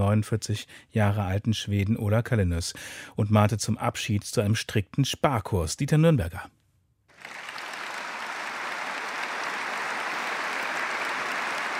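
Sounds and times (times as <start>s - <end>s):
speech: 0.0s - 6.6s
shareholders applauding at annual general meeting: 7.1s - 11.7s.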